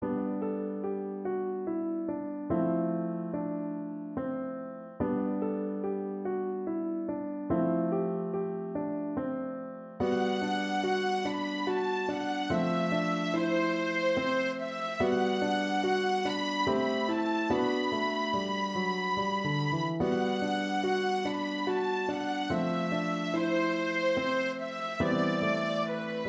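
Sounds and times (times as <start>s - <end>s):
chanson piano: 0.0s - 26.2s
chanson violin: 10.0s - 26.2s.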